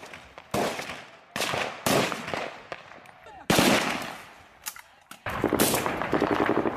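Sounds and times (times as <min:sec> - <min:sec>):
gunfire shots and short bursts: 0:00.0 - 0:02.9, 0:03.5 - 0:04.3, 0:05.2 - 0:06.7.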